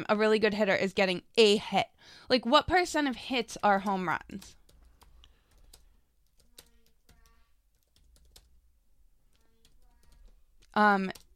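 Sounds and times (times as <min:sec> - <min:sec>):
speech: 0:00.0 - 0:04.6, 0:10.8 - 0:11.2
soft keystrokes on a computer keyboard typing into a chat: 0:03.0 - 0:08.7, 0:09.3 - 0:11.3.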